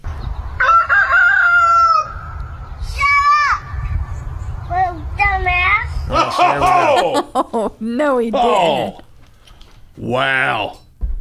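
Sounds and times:
steady low rumble: 0.0 - 7.9
rooster crowing loudly: 0.6 - 2.4
child's voice: 2.8 - 3.9, 4.6 - 6.1
laughter: 6.2 - 9.1
speech: 7.6 - 9.0, 10.0 - 10.8.

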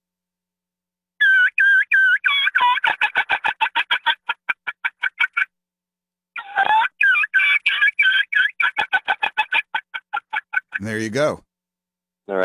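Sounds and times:
turkey mouth call playing a kee run: 1.2 - 5.5, 6.4 - 10.8
speech: 10.9 - 11.5.

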